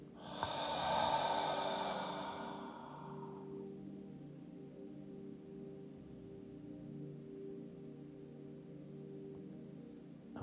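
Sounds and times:
quiet low hum: 0.0 - 6.7
deep breathing in and out: 0.2 - 3.7.

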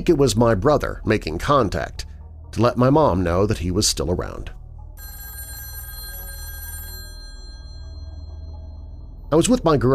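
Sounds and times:
speech: 0.0 - 4.6, 9.3 - 9.9
telephone bell ringing: 5.0 - 9.3.

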